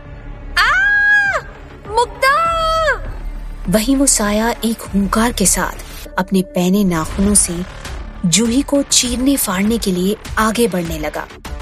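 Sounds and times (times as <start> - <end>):
woman screaming: 0.6 - 3.2
speech: 3.7 - 11.4.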